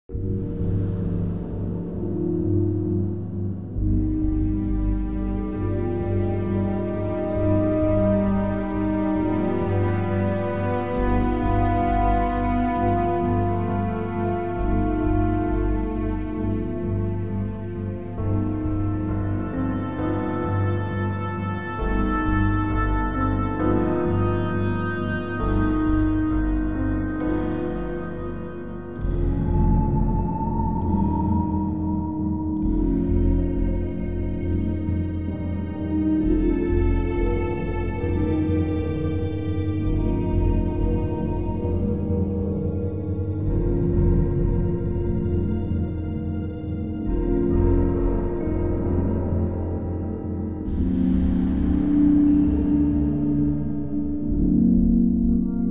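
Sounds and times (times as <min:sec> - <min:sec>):
temple ambient music: 0:00.0 - 0:55.6.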